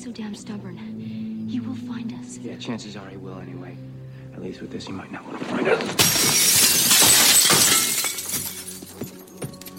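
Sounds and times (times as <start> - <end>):
speech: 0.0 - 6.6
window glass shattering: 5.5 - 9.7
falling glass shards tinkling: 6.0 - 9.7.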